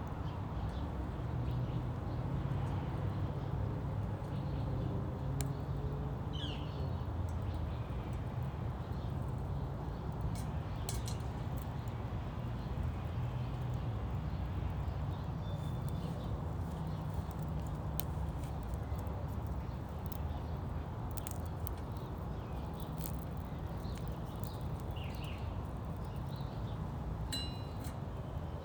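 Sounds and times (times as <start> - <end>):
traffic outside a neighborhood: 0.0 - 28.6
birds chirping at sunrise: 12.6 - 28.6
small fire in a portable stove roaring and crackling at sunrise: 16.6 - 27.0.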